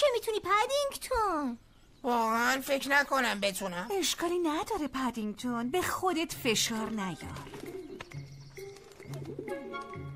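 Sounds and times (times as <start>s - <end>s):
speech: 0.0s - 8.2s
pigeon cooing: 7.4s - 10.0s.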